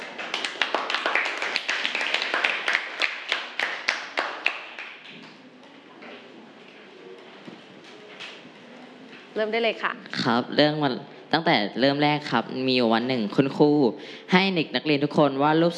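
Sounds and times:
small group in a classroom applauding a student presenter: 0.0s - 5.4s
speech: 9.4s - 15.7s.

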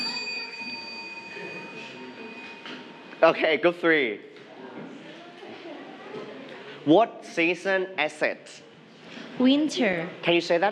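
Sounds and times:
bell ringing: 0.0s - 3.4s
murmur of a room: 0.0s - 10.6s
speech: 3.2s - 4.3s, 6.9s - 8.7s, 9.4s - 10.6s.

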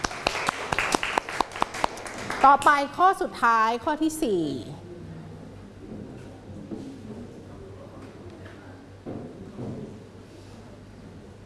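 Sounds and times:
small group of students clapping for a classmate in a classroom: 0.0s - 2.7s
speech: 2.4s - 4.8s.

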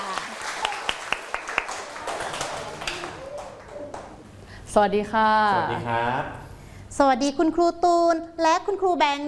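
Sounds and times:
small group clapping: 0.0s - 4.3s
faint voices murmuring: 1.8s - 4.4s
speech: 4.7s - 6.4s, 7.0s - 9.2s.

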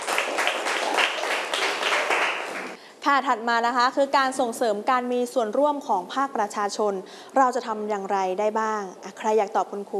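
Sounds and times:
students clapping in a classroom: 0.0s - 2.8s
speech: 3.0s - 9.9s.

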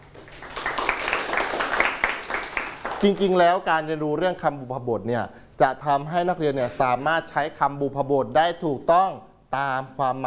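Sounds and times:
group of students clapping in a room: 0.0s - 3.4s
speech: 3.0s - 10.2s.

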